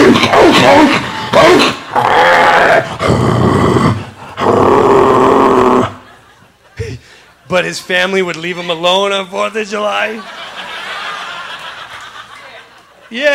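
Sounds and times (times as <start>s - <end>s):
German Shepherd dog growling and snarling aggressively: 0.0s - 6.0s
laughter: 5.8s - 7.6s, 9.9s - 13.3s
speech: 7.6s - 10.4s, 13.1s - 13.3s.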